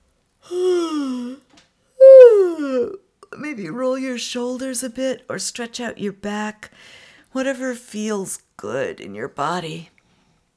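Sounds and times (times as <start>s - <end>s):
speech: 0.5s - 0.7s, 3.6s - 9.9s
voiced yawns with moaning exhale: 0.5s - 3.0s.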